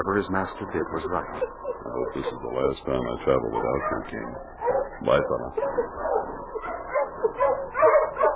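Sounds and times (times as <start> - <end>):
speech: 0.0 - 6.1
dog whimpering deep in its throat: 1.2 - 2.6, 3.5 - 8.3.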